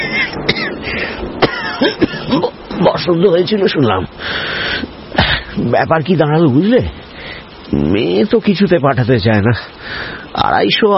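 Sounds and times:
person coughing after puffs on a hookah: 0:00.0 - 0:00.8, 0:01.4 - 0:02.5
speech: 0:03.0 - 0:04.8, 0:05.6 - 0:07.0, 0:07.7 - 0:10.9.

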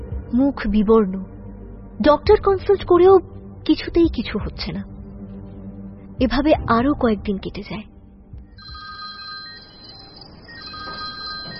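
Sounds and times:
low rumbling background: 0:00.0 - 0:08.8
speech: 0:00.3 - 0:01.3, 0:02.0 - 0:04.9, 0:06.2 - 0:07.9
telephone ringing with a steady high electronic tone: 0:08.6 - 0:11.5.

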